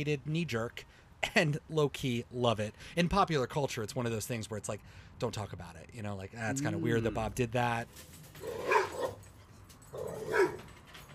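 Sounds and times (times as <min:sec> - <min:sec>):
speech: 0:00.0 - 0:08.8
dogs barking: 0:08.4 - 0:09.2, 0:09.9 - 0:10.7.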